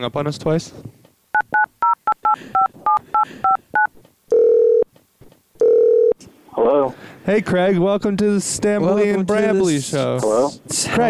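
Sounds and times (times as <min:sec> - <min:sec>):
speech: 0:00.0 - 0:01.0, 0:07.3 - 0:11.0
touch-tone dialing beeps: 0:01.4 - 0:04.9
longer lower steady telephone tone: 0:04.3 - 0:04.9, 0:05.6 - 0:06.2.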